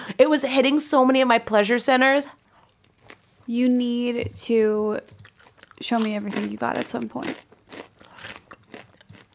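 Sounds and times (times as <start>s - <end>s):
speech: 0.1s - 2.4s, 3.5s - 5.2s, 5.8s - 7.5s
crunchy chewing of puffed water lily pops snack: 5.1s - 9.3s.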